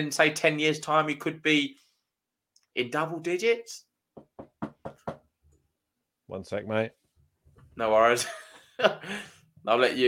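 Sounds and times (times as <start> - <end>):
speech: 0.0 - 1.8, 2.8 - 4.3, 6.3 - 7.0, 7.8 - 10.0
firm knocks on a door: 4.1 - 5.3.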